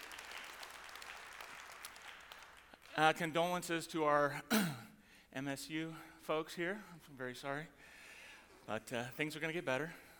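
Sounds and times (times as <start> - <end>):
audience applause: 0.0 - 3.0
speech: 3.0 - 8.0, 8.7 - 10.0.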